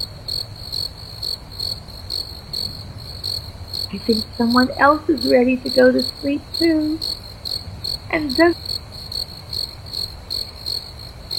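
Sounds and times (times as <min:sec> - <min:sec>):
faint low rumble: 0:00.0 - 0:08.8
crickets chirping at night: 0:00.0 - 0:11.3
speech: 0:03.9 - 0:07.2, 0:08.1 - 0:08.8.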